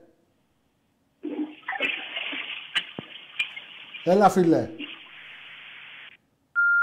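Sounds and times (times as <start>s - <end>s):
rush of water heard through a phone line: 1.2s - 6.2s
speech: 4.0s - 4.8s.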